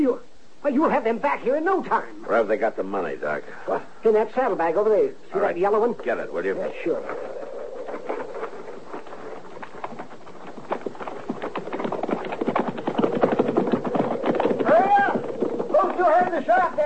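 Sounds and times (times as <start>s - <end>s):
speech: 0.0s - 7.4s
voices calling out: 5.2s - 10.3s, 14.1s - 16.8s
several horses' hooves clip-clopping: 5.6s - 16.8s.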